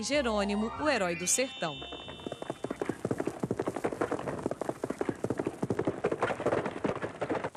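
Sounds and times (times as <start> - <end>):
speech: 0.0 - 2.3
radio sound effect of a horse galloping: 1.9 - 7.5.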